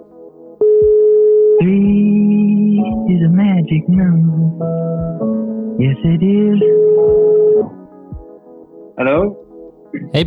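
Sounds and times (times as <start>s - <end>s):
electronic telephone tone while placing a call to Italy: 0.6s - 1.8s
speech: 1.6s - 2.0s, 3.2s - 7.6s, 9.0s - 9.4s, 10.0s - 10.2s.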